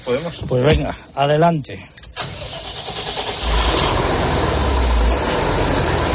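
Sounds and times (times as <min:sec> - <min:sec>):
speech: 0:00.1 - 0:02.0
New Holland tractor diesel engine starting: 0:02.1 - 0:06.1.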